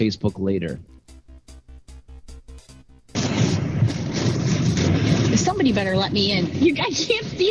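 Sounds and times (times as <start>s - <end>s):
speech: 0.0s - 1.0s, 5.4s - 7.4s
booming pops from explosions: 3.1s - 7.4s
loud crackling roar of lightning strike at a train stop: 3.2s - 6.6s.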